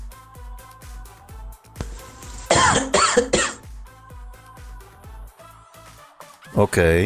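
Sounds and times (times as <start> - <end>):
soft rhythmic music bed: 0.0 - 7.0
harsh hacking heavy coughs: 2.4 - 3.6.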